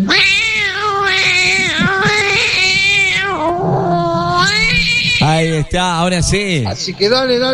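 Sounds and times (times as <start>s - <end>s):
cat yowling in a voice message: 0.0s - 5.5s
speech: 5.6s - 7.5s.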